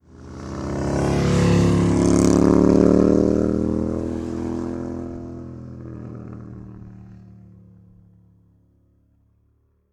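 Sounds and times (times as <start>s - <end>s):
motorcycle passing by: 0.0s - 7.8s.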